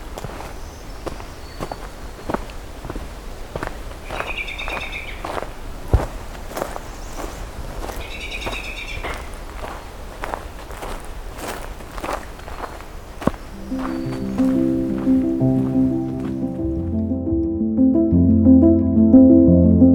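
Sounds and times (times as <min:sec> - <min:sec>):
crunching footsteps outdoors: 0:00.0 - 0:17.0
American robin singing: 0:00.4 - 0:02.4, 0:04.0 - 0:05.4, 0:07.9 - 0:09.4, 0:13.3 - 0:19.1
ovenbird singing: 0:00.4 - 0:02.4, 0:04.0 - 0:05.4, 0:06.9 - 0:09.4, 0:13.2 - 0:17.1.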